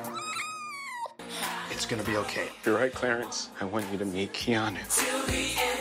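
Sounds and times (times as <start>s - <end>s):
small kitten meowing: 0.1s - 1.2s
speech: 1.8s - 5.7s.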